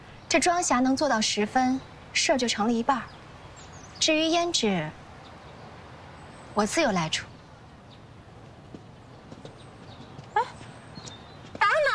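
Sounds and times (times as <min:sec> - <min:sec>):
speech: 0:00.3 - 0:03.2, 0:04.0 - 0:05.0, 0:06.6 - 0:07.3
donkey hooves clopping: 0:08.4 - 0:11.9.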